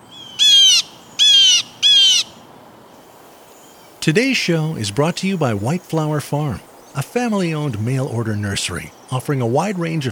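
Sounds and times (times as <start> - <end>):
faint hiss: 0.0 - 10.1
jay alarm calls imitating a hawk: 0.1 - 2.4
speech: 4.0 - 10.1.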